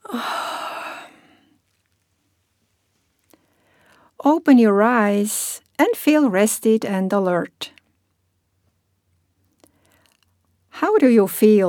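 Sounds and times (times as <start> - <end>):
long breathy yawn from one person: 0.0 - 1.3
speech: 4.2 - 7.8, 11.0 - 11.6.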